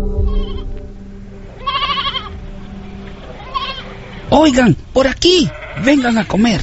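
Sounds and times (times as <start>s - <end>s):
goats bleating: 0.2s - 0.7s, 1.5s - 2.4s, 3.1s - 4.3s, 5.1s - 6.6s
speech: 4.5s - 6.6s.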